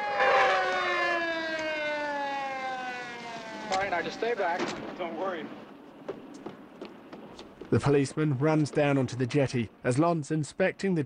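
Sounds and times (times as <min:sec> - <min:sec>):
police car siren wailing as the car pulls up by a jetty: 0:00.0 - 0:04.6
speech: 0:03.9 - 0:05.7, 0:07.7 - 0:11.0.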